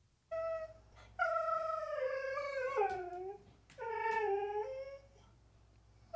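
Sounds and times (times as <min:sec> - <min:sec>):
dog whining for treats: 0:00.3 - 0:05.2.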